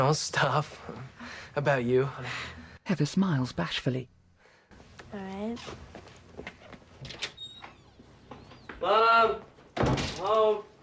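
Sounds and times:
speech: 0:00.0 - 0:04.2, 0:05.1 - 0:06.5, 0:08.8 - 0:09.5, 0:10.2 - 0:10.7
back door opening as someone walks in: 0:06.4 - 0:09.0, 0:09.6 - 0:10.5
back door squeak: 0:07.0 - 0:09.0.

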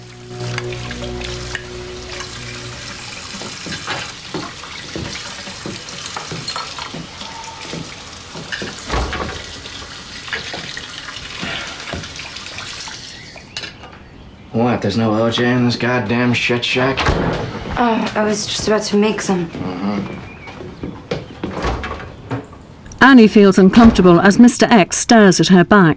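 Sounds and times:
kitchen faucet running: 0:00.0 - 0:13.6
plates and utensils clinking in a sink: 0:03.4 - 0:12.2
speech: 0:14.8 - 0:19.8, 0:23.0 - 0:25.9.

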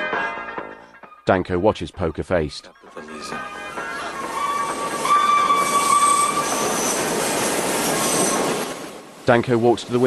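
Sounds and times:
speech: 0:01.3 - 0:03.5, 0:09.3 - 0:10.0
elevated railway train passing with a rumble: 0:02.8 - 0:10.0
elevated railway train wheel squeal: 0:03.1 - 0:08.8.

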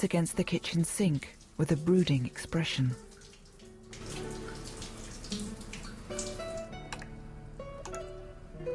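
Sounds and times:
speech: 0:00.0 - 0:03.1
shower running: 0:00.0 - 0:07.1
tap dripping: 0:01.1 - 0:07.2.

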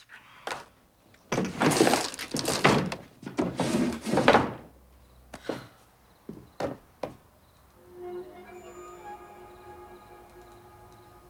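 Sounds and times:
sharp knocks and bumps: 0:01.3 - 0:04.7, 0:06.3 - 0:07.2
wooden drawers sliding and rattling: 0:01.3 - 0:04.8
shuffling and scraping of rummaging through drawers: 0:01.4 - 0:04.7
faint lingering hum: 0:07.7 - 0:11.2.

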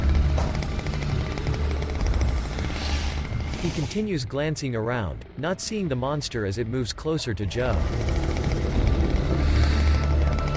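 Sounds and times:
chainsaw running at full throttle while swung through the air: 0:00.0 - 0:04.0, 0:07.7 - 0:10.5
speech: 0:03.6 - 0:08.2.

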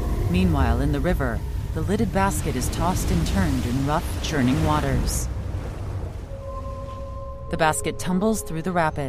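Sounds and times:
massive sandstorm blasting dust, sand and debris: 0:00.2 - 0:06.5
speech: 0:00.3 - 0:05.3, 0:07.5 - 0:09.0.

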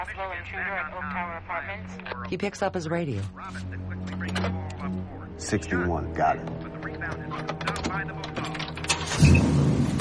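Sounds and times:
speech: 0:00.0 - 0:08.6
1965-era car engine starting and pulling away from the kerb: 0:08.8 - 0:09.9.

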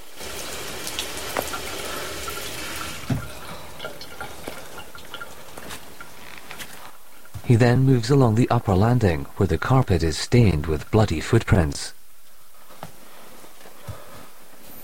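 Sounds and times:
water splashes: 0:00.0 - 0:07.0
tap running into a bathroom sink: 0:00.3 - 0:06.2
speech: 0:07.5 - 0:12.0.

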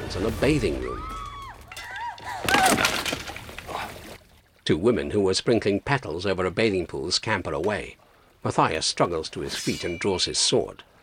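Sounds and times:
speech: 0:00.1 - 0:01.1, 0:02.5 - 0:03.1, 0:04.7 - 0:10.9
debris rattling: 0:01.3 - 0:04.0
glass skylight shattering as someone falls through it: 0:01.7 - 0:03.4.

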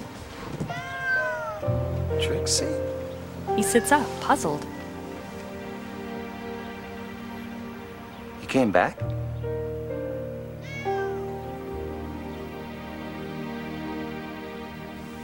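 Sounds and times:
cat meowing on a waking man's chest at dawn: 0:00.6 - 0:01.8, 0:10.6 - 0:11.4
steady sustained musical drone: 0:01.6 - 0:15.2
speech: 0:02.2 - 0:03.0, 0:03.6 - 0:04.7, 0:08.5 - 0:09.2.

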